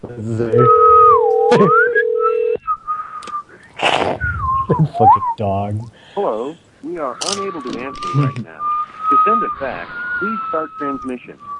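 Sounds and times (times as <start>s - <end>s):
speech: 0.0s - 0.8s, 1.5s - 1.8s, 4.7s - 11.5s
person whistling imitating telephone touch tones: 0.6s - 5.4s, 7.8s - 11.5s.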